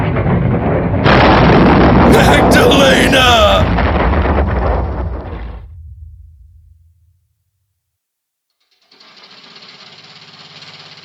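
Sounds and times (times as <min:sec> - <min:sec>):
heavy rumbling roar: 0:00.0 - 0:07.1
plane explosion after lightning strike: 0:00.0 - 0:07.3.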